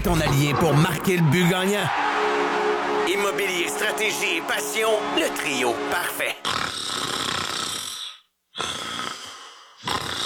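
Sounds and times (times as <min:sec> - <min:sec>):
speech: 0:00.0 - 0:02.0, 0:03.1 - 0:06.4
sleeping person snoring with rasping breaths: 0:06.4 - 0:10.2.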